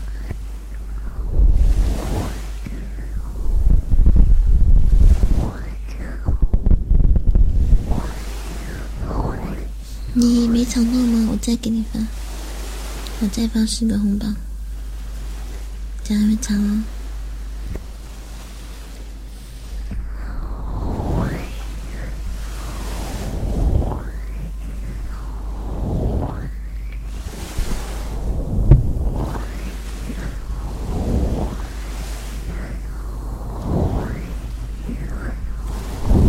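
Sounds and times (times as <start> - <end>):
constant low rumble of surf: 0.0 - 36.2
ocean waves washing in and receding: 0.0 - 36.2
speech: 10.2 - 12.2, 13.2 - 14.5, 16.1 - 17.0.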